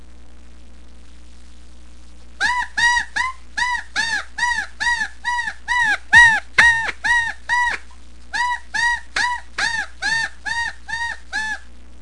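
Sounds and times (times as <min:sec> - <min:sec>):
reed predator call imitating a woodpecker distress cry: 0:02.4 - 0:11.7.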